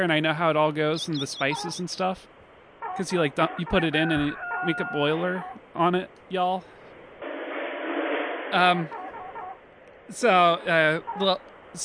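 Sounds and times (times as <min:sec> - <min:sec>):
speech: 0:00.0 - 0:02.4, 0:03.0 - 0:06.8, 0:08.5 - 0:09.0, 0:10.1 - 0:11.8
live chickens clucking: 0:00.9 - 0:02.1, 0:02.8 - 0:05.6, 0:08.7 - 0:09.6, 0:10.8 - 0:11.4
chicken squawk: 0:01.3 - 0:01.9, 0:02.8 - 0:05.6, 0:08.8 - 0:09.6.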